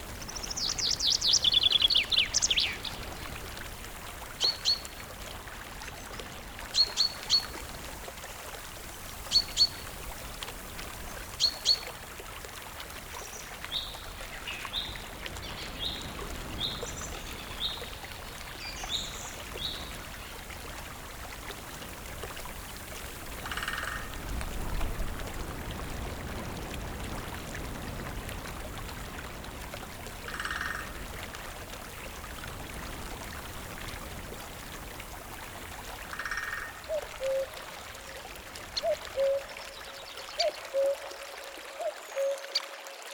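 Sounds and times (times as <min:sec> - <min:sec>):
forest ambience: 0:00.0 - 0:42.6.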